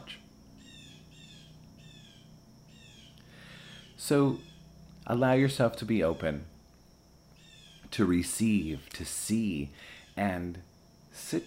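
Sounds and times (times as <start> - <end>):
bird chirping outdoors: 0.0 - 5.0, 5.9 - 7.9
steady low hum: 0.0 - 11.4
speech: 4.0 - 4.5, 5.1 - 6.5, 7.9 - 11.4.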